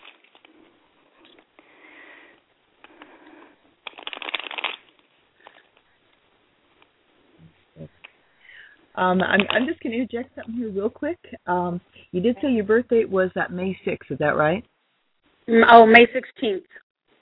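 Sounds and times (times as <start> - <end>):
deck of cards shuffling: 0.0 - 1.6, 3.8 - 5.9, 9.2 - 9.9
speech: 9.0 - 14.7, 15.5 - 16.8.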